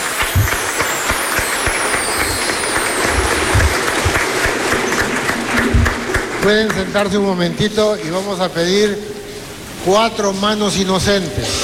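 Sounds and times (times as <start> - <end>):
crowd applauding: 0.0 - 8.2
speech: 6.4 - 9.1, 9.8 - 11.6.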